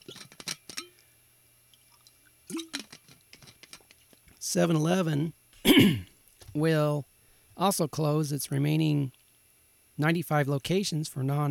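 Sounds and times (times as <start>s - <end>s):
person sipping water: 1.7s - 4.0s
speech: 2.5s - 2.8s, 4.4s - 9.2s, 10.0s - 11.5s.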